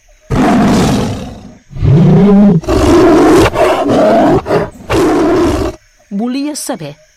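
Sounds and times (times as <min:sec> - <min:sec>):
lion roaring while pacing around a cave: 0:00.3 - 0:05.8
speech: 0:02.2 - 0:03.2, 0:06.2 - 0:07.1.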